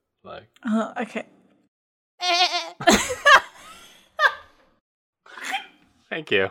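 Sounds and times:
speech: 0:00.2 - 0:01.4, 0:06.2 - 0:06.4
person imitating a goat bleating: 0:02.2 - 0:02.9
person laughing: 0:02.3 - 0:04.5.

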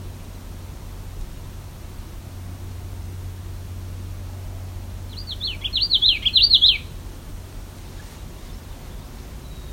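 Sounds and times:
background hiss: 0:00.0 - 0:09.7
Common Yellowthroat singing near a lake: 0:04.6 - 0:07.0, 0:07.8 - 0:09.7.

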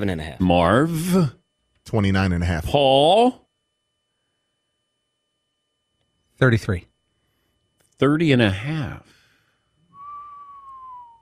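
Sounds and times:
speech: 0:00.0 - 0:03.4, 0:06.4 - 0:06.9, 0:08.0 - 0:09.1
person whistling a sustained downward-drifting tone: 0:09.9 - 0:11.1.

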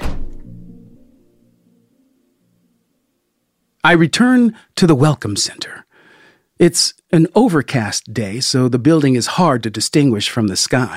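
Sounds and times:
van door slamming shut: 0:00.0 - 0:00.6
speech: 0:03.8 - 0:05.9, 0:06.6 - 0:10.9.

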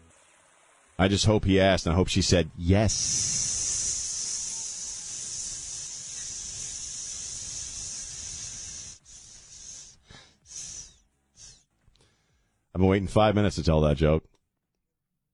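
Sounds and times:
speech: 0:01.0 - 0:03.6, 0:12.8 - 0:14.4
rattlesnake rattle buzz from two mating rattlesnakes: 0:02.7 - 0:11.6.

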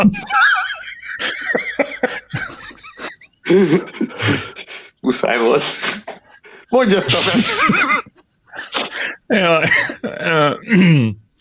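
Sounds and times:
speech: 0:00.0 - 0:00.5, 0:03.5 - 0:06.1, 0:06.7 - 0:11.2
laughter: 0:00.0 - 0:05.0, 0:06.1 - 0:08.8, 0:09.5 - 0:10.3
throat clearing: 0:10.6 - 0:11.2
person coughing: 0:10.7 - 0:11.2.

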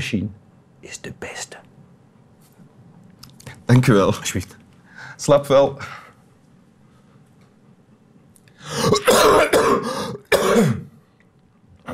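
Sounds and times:
speech: 0:00.0 - 0:01.6, 0:03.7 - 0:04.6, 0:05.2 - 0:06.0, 0:08.6 - 0:10.8
coughing: 0:08.6 - 0:11.0
harsh throat clearing: 0:08.7 - 0:11.0.

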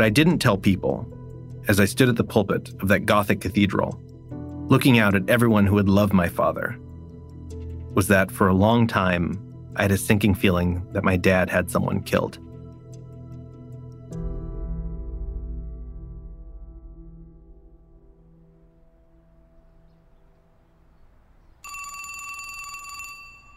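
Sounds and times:
speech: 0:00.0 - 0:04.1, 0:04.7 - 0:06.9, 0:07.9 - 0:12.4
sustained musical tone with a deep low boom: 0:00.0 - 0:20.6
loud bright telephone bell ringing: 0:21.6 - 0:23.5.

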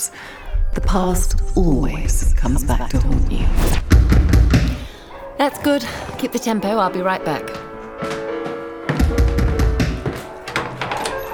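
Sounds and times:
sustained musical tones: 0:00.0 - 0:08.8
speech: 0:00.8 - 0:04.2, 0:05.4 - 0:08.2
sharp knocks on a door: 0:08.9 - 0:10.7.

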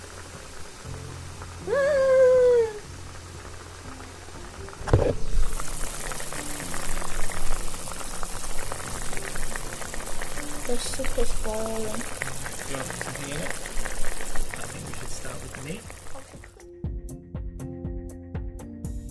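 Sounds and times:
pot of slightly spicy hot pot soup boiling on a stove: 0:00.0 - 0:16.6.

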